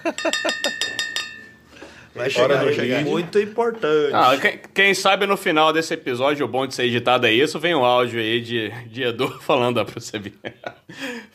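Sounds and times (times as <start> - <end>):
speech: 0.0 - 0.8, 2.1 - 11.3
laughter: 0.0 - 0.9, 9.2 - 11.3
glasses clinking in a toast: 0.0 - 2.0.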